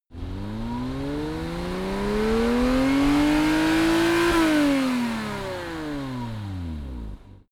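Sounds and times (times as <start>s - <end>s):
Porsche Boxster sports car engine revving, exterior: 0.1s - 7.4s.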